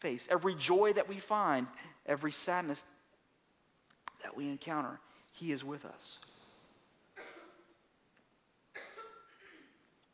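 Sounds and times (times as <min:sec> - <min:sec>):
speech: 0:00.0 - 0:03.0, 0:04.2 - 0:06.3
person coughing: 0:07.2 - 0:07.8, 0:08.8 - 0:09.8.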